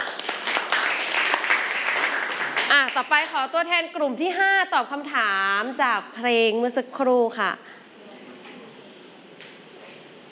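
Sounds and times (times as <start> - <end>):
audience clapping at a question-and-answer activity: 0.0 - 3.4
speech: 2.9 - 7.8.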